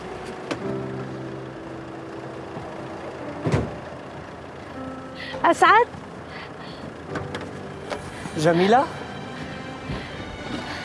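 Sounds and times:
car engine idling: 0.0 - 10.8
car door clunk: 0.2 - 0.8, 3.3 - 4.3, 7.1 - 8.1
speech: 5.4 - 6.0, 8.4 - 9.0.

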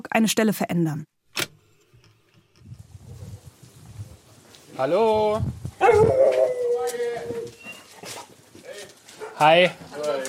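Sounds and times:
speech: 0.1 - 1.1, 4.8 - 6.2, 9.4 - 10.2
dog whimpering with a high whine: 5.8 - 8.0.

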